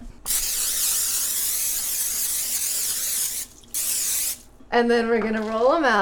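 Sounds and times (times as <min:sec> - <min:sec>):
Pam cooking oil spray can hissing: 0:00.0 - 0:04.5
speech: 0:04.7 - 0:06.0.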